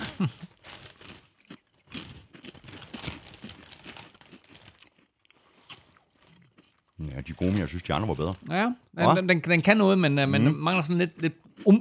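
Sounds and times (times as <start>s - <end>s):
speech: 0.2s - 0.5s, 7.1s - 11.8s
sealed crisp bag torn open crinkling and crackling: 0.2s - 8.6s.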